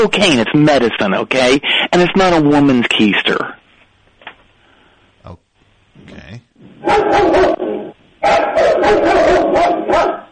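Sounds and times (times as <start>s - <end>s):
speech: 0.0s - 3.6s, 6.1s - 10.2s
dog barking: 6.8s - 10.3s.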